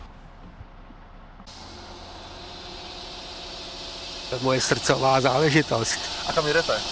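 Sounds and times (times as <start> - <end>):
narrow-gauge train idling with low rumble: 0.0 - 6.9
loud steady hiss of released steam or air from narrow-gauge train at station: 1.5 - 6.9
speech: 4.3 - 6.9.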